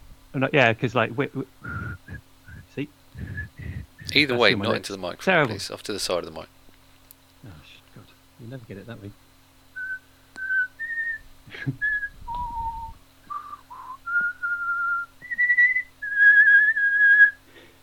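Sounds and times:
speech: 0.4s - 6.6s, 8.4s - 9.2s, 11.5s - 11.9s
person whistling through teeth: 1.6s - 4.1s, 9.8s - 17.4s.

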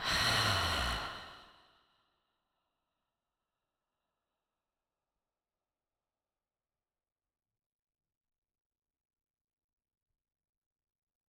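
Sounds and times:
forceful exhale through an open mouth: 0.0s - 1.5s.

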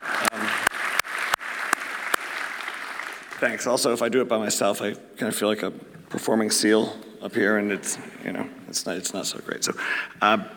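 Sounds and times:
audience applause: 0.0s - 3.8s
speech: 3.4s - 10.5s.

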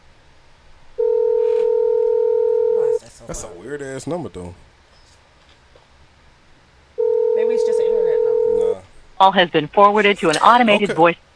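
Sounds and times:
loud steady electronic telephone tone on a phone line: 1.0s - 3.0s, 7.0s - 8.8s
speech: 3.3s - 4.7s, 9.2s - 11.2s.

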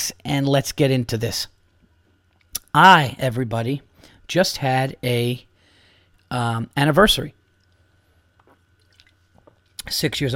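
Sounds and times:
low steady hum: 0.0s - 10.3s
speech: 0.1s - 1.6s, 2.8s - 5.5s, 6.3s - 7.4s, 9.8s - 10.3s
short sip of seltzer water with crackling bubbles: 7.6s - 9.9s.

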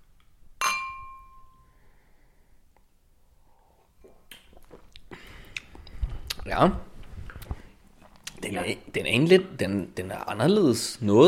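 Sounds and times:
beer glasses clinking in a toast: 0.6s - 1.6s
speech: 6.5s - 6.9s, 8.6s - 11.2s.

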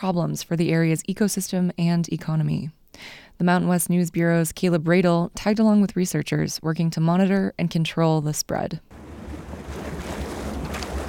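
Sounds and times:
speech: 0.0s - 9.0s
outdoor wind rumble on Lake Tahoe California: 8.9s - 11.0s
water lapping around a small anchored boat on Lake Tahoe California: 8.9s - 11.0s.

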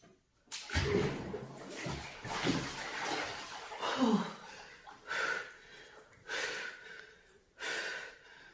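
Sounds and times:
faint splashing and sloshing of plunge water: 0.5s - 6.1s
person gasping getting into freezing cold plunge water: 3.8s - 8.5s.

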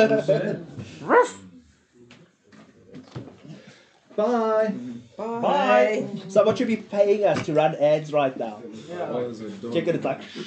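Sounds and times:
speech: 0.0s - 1.4s, 4.2s - 10.4s
dog barking and yelping: 1.0s - 1.4s.

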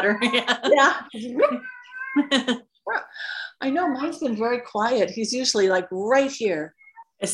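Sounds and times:
speech: 0.0s - 7.3s
cat meowing: 1.5s - 2.5s.

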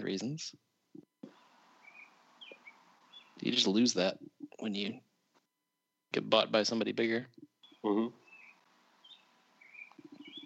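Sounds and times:
speech: 0.1s - 0.7s, 3.4s - 5.0s, 6.1s - 8.2s
birds chirping outdoors: 1.2s - 5.0s, 7.4s - 10.4s.

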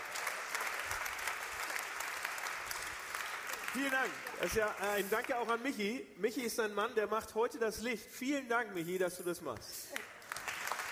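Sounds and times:
audience applauding: 0.0s - 5.5s, 9.9s - 10.9s
speech: 3.8s - 10.1s.

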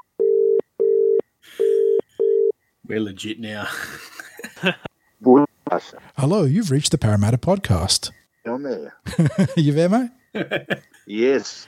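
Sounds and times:
telephone ringback tone: 0.0s - 2.5s
speech: 2.9s - 4.9s, 5.7s - 11.6s
laughter: 3.6s - 4.9s, 9.0s - 11.2s.

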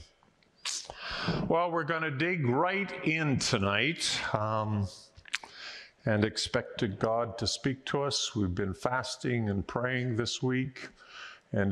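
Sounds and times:
person sneezing in the audience in a room: 0.6s - 1.5s
speech: 1.2s - 5.1s, 6.0s - 11.7s.

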